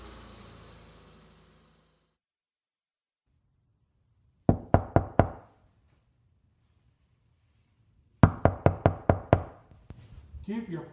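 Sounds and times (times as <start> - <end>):
knocking on a door: 4.5 - 5.5, 8.2 - 9.6
speech: 10.5 - 10.9.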